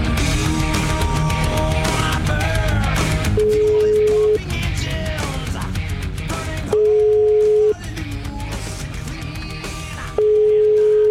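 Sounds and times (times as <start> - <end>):
music: 0.0 - 11.1
ringback tone of an outgoing phone call: 3.4 - 4.4, 6.8 - 7.8, 10.2 - 11.1.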